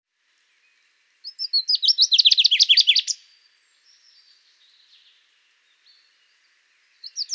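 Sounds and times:
Common chaffinch Fringilla coelebs singing: 0.4 - 7.3.

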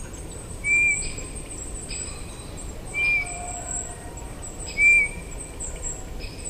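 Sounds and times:
Eurasian bullfinch Pyrrhula pyrrhula giving soft short piping whistles: 0.6 - 1.2, 2.9 - 3.7, 4.7 - 5.3.

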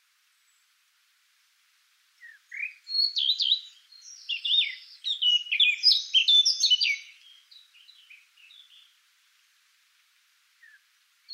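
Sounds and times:
Eurasian blackcap Sylvia atricapilla warbling song: 2.2 - 8.9, 10.6 - 11.3.

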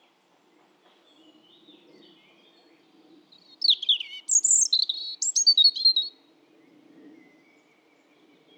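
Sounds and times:
European robin Erithacus rubecula singing: 3.4 - 6.2.

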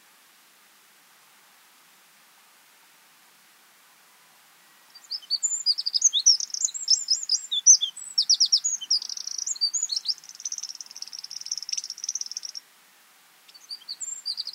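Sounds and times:
Eurasian wren Troglodytes troglodytes singing: 3.8 - 12.6, 13.4 - 14.5.

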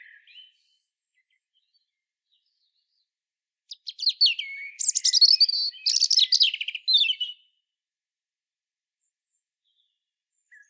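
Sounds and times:
European robin singing: 0.0 - 2.8, 3.7 - 7.5.

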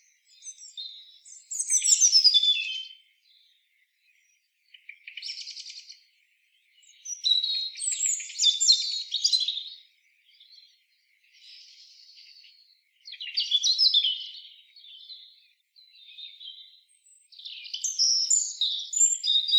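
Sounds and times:
European robin Erithacus rubecula singing high twittering phrases: 0.0 - 19.5.

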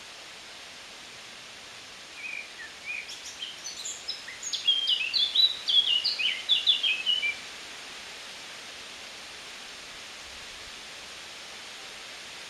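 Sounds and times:
Eurasian blackcap Sylvia atricapilla singing: 2.2 - 7.4.

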